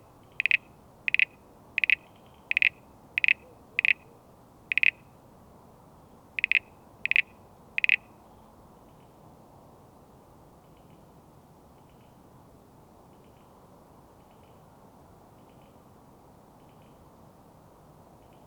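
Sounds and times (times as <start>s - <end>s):
fainter froth frog calls near a house: 0.0s - 5.1s, 6.4s - 8.2s
Crinia signifera froth frog giving short sharp clicking notes: 0.3s - 4.1s, 4.7s - 5.0s, 6.4s - 8.1s.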